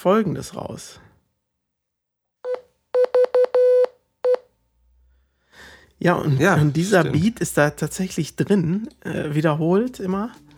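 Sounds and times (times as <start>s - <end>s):
speech: 0.0s - 1.1s, 6.0s - 10.5s
Morse code beeps spelling EVE: 2.5s - 4.4s.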